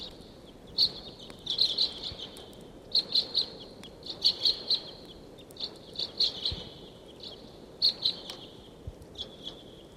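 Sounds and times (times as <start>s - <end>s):
flock of birds calling with sharp high chirps: 0.0s - 9.9s.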